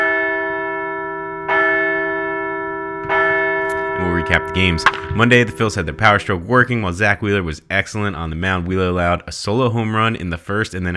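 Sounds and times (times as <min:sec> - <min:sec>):
large resonant bell ringing in slow strikes: 0:00.0 - 0:07.4
speech: 0:04.3 - 0:10.9.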